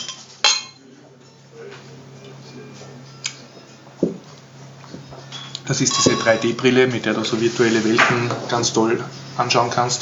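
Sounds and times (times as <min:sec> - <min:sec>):
glasses clinking in a toast: 0:00.0 - 0:00.8, 0:04.9 - 0:06.8
speech: 0:05.7 - 0:10.0.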